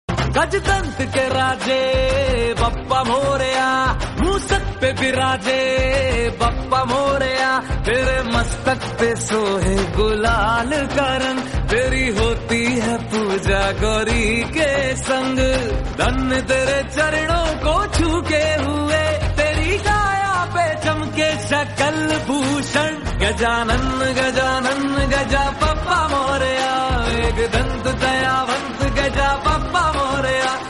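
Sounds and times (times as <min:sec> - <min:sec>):
devotional Hindi song: 0:00.2 - 0:30.6.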